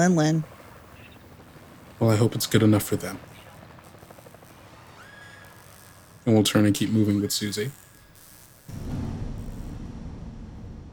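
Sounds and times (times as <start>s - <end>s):
speech: 0.0s - 0.5s, 2.0s - 3.3s, 6.3s - 7.8s
helicopter flying overhead: 0.0s - 8.2s.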